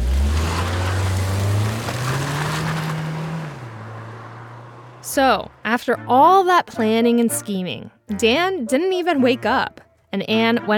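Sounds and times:
car engine roaring and accelerating at night: 0:00.0 - 0:06.2
rushing road noise: 0:00.0 - 0:07.4
speech: 0:05.1 - 0:10.7.

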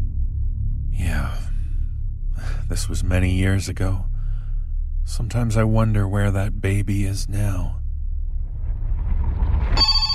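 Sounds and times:
low steady rumble: 0:00.0 - 0:10.1
speech: 0:01.0 - 0:01.6, 0:02.4 - 0:04.1, 0:05.0 - 0:07.8
telephone bell ringing: 0:09.8 - 0:10.1.

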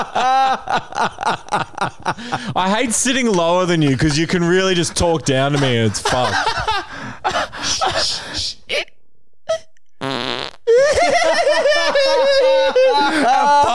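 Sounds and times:
speech: 0:00.0 - 0:07.2
laughter: 0:00.0 - 0:08.2, 0:10.7 - 0:13.7
long loud wavering rasping fart: 0:10.0 - 0:10.7.

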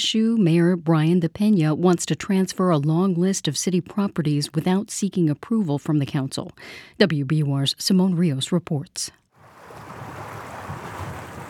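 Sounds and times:
speech: 0:00.0 - 0:09.2
water gushing under the ruins of an old paper mill: 0:09.4 - 0:11.4.

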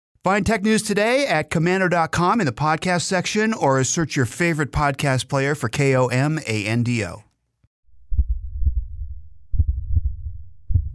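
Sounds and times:
speech: 0:00.2 - 0:07.3
continuous low rumble: 0:07.9 - 0:10.9
human heart beating faster and faster: 0:08.0 - 0:10.9.

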